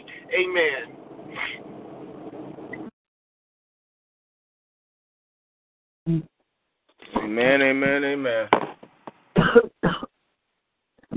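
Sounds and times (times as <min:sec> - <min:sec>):
speech: 0:00.3 - 0:01.6, 0:07.4 - 0:08.8, 0:09.5 - 0:10.0
person coughing harshly: 0:09.4 - 0:10.1.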